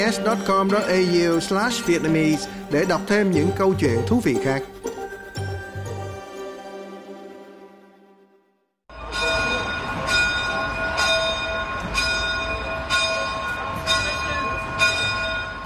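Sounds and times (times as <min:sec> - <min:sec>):
speech: 0:00.0 - 0:04.8
church bells pealing for midnight mass: 0:00.0 - 0:06.2, 0:08.9 - 0:15.6.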